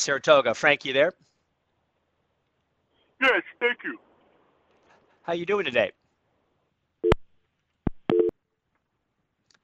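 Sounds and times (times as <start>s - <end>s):
speech: 0.0s - 1.3s, 3.2s - 4.1s, 5.3s - 6.0s
telephone busy signal after a dropped phone-in call: 8.1s - 8.3s.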